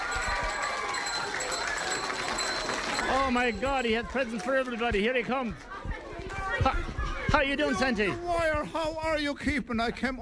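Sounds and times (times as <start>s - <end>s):
group of children clapping and cheering: 0.0s - 5.0s
speech: 3.2s - 5.7s, 6.6s - 10.2s.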